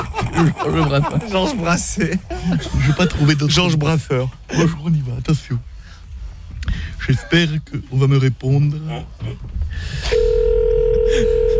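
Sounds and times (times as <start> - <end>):
laughter: 0.0 - 3.5
noise: 0.0 - 11.5
speech: 0.4 - 5.7, 7.0 - 10.3, 11.1 - 11.5
telephone ringing tone on an international call: 10.2 - 11.5.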